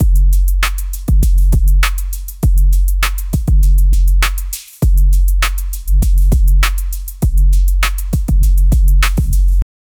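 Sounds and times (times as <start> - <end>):
chill R&B loop with sub bass: 0.0 - 9.6.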